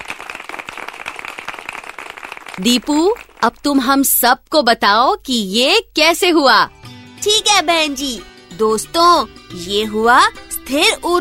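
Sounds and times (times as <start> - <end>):
children applauding in a school classroom: 0.0 - 3.4
speech: 2.6 - 11.1.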